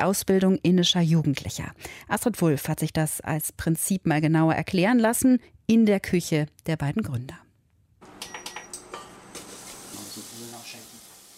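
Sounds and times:
speech: 0.0 - 7.4
mustard seeds sizzling in hot oil in a pan: 8.0 - 11.3.

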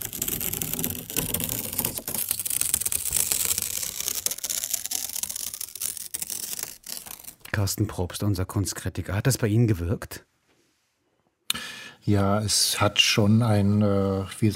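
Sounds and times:
paper torn slowly as a trigger sound in an art installation: 0.0 - 7.5
speech: 7.6 - 10.4, 12.0 - 14.5.

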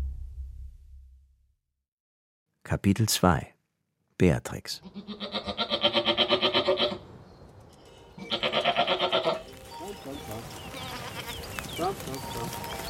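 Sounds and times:
speech: 2.7 - 3.5, 4.2 - 5.3, 11.8 - 12.7
Toggenburg dairy goats bleating on the heath in Brandenburg Germany: 4.8 - 7.0, 8.2 - 9.5, 10.3 - 12.8
rustling from the goat herd: 7.8 - 12.8.

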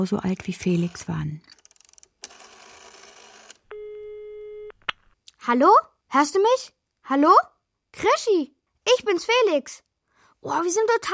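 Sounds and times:
speech: 0.0 - 1.6, 5.5 - 9.8, 10.4 - 11.1
telephone ringing tone: 2.2 - 4.8.

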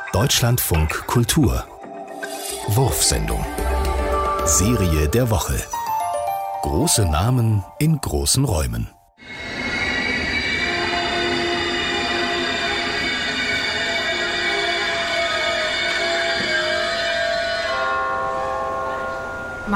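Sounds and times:
speech: 0.2 - 1.7, 2.7 - 3.7, 4.4 - 5.8, 6.6 - 9.0
train wheels and brakes squealing while pulling into a station platform: 9.2 - 19.4
dense rumble of rail noise from a train pulling into a station: 9.2 - 19.7.

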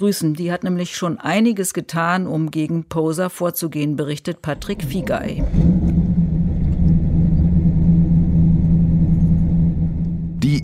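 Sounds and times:
speech: 0.0 - 5.8
car engine rumbling on a city centre street in Mannheim: 4.6 - 10.6.

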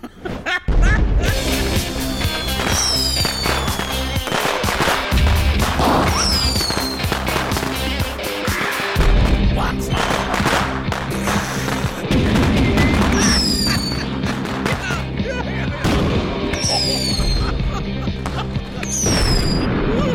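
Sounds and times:
laughter: 0.0 - 4.2, 6.0 - 10.4, 11.1 - 20.1
stage pyrotechnics firecracker bangs: 0.7 - 8.0, 9.0 - 15.0, 18.2 - 20.0
whistling streaks of fireworks: 2.0 - 4.7, 6.0 - 7.1, 13.1 - 14.1, 16.5 - 17.2, 18.8 - 19.7
sharp crackling pops: 2.2 - 15.1.

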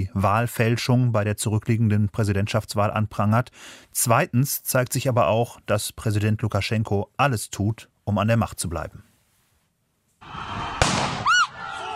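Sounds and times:
speech: 0.0 - 9.1
brief high arching wail: 10.2 - 11.9
stun grenade detonating with loud bang: 10.8 - 11.3.

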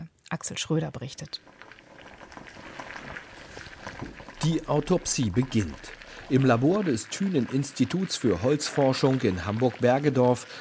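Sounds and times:
speech: 0.3 - 1.6, 4.4 - 10.5
water boiling in a small lab beaker with a wood cube: 0.4 - 10.5.

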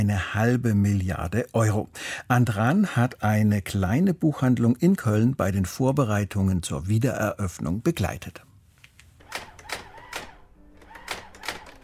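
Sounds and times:
speech: 0.0 - 8.5
mechanical typewriter keys clacking: 9.2 - 11.8.

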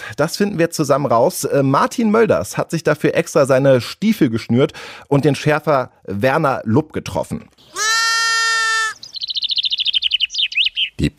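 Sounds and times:
speech: 0.1 - 7.9, 11.0 - 11.1
sheep bleating in a meadow: 7.7 - 9.0
rapid high chirping trill from a bird: 7.8 - 11.1.

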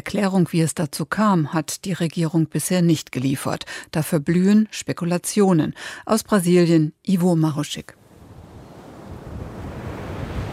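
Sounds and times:
speech: 0.1 - 8.0
low wind rumble: 8.0 - 10.5
surf washing onto a crowded beach at Aracaju in northeastern Brazil: 8.0 - 10.5.

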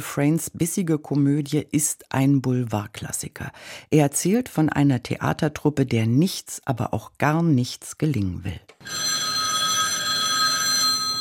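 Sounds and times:
speech: 0.0 - 9.2
telephone bell ringing with shrill metallic jangle: 8.8 - 11.2.

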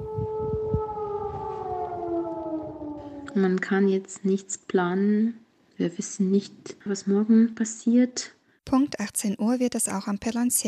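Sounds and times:
civil defense air raid siren wailing: 0.0 - 4.0
speech: 3.4 - 10.6.

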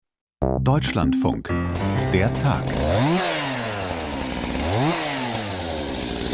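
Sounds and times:
speech: 0.4 - 3.3
chainsaw running: 1.7 - 6.3.

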